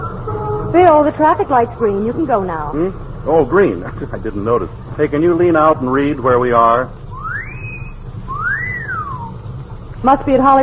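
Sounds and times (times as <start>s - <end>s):
low rumble at a city intersection: 0.0s - 10.6s
speech: 0.7s - 7.0s, 10.0s - 10.6s
person wolf whistling at girls at a city intersection: 7.1s - 9.4s.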